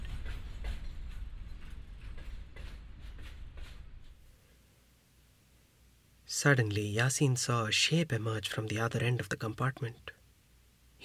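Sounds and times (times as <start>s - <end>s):
train picking up speed on rails: 0.0s - 4.2s
speech: 6.4s - 10.2s.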